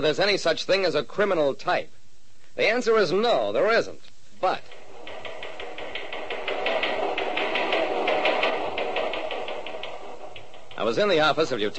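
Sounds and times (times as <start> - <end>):
speech: 0.0 - 2.0, 2.6 - 4.8, 10.8 - 11.7
police teletypewriter printing: 4.7 - 11.7.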